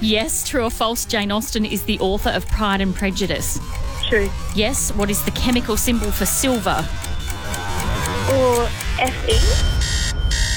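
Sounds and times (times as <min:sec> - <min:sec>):
speech: 0:00.0 - 0:07.1, 0:08.3 - 0:09.9
quieter pulsing buzzes: 0:00.0 - 0:10.5
harsh game-show buzzer marking an incorrect quiz answer: 0:03.2 - 0:10.5.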